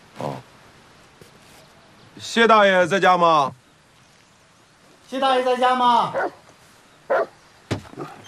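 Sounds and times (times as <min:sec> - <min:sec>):
speech: 0:02.2 - 0:03.6, 0:05.1 - 0:06.4
large wolf-like guard dog barking: 0:06.1 - 0:06.4, 0:07.1 - 0:07.4.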